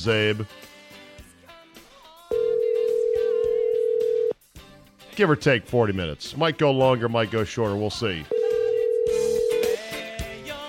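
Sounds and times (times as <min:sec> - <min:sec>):
speech: 0:00.0 - 0:00.7, 0:05.2 - 0:08.3
outgoing phone call tone: 0:02.3 - 0:04.4, 0:08.3 - 0:09.8.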